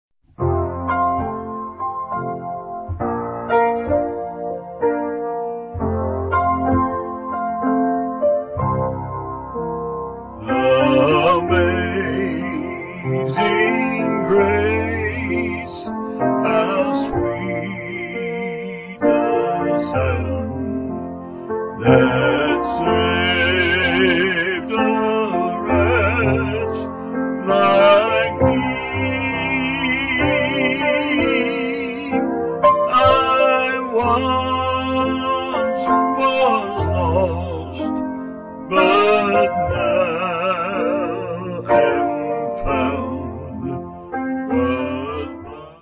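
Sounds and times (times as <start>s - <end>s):
piano: 0.2s - 45.8s
person singing a hymn: 10.4s - 38.0s, 38.6s - 45.8s.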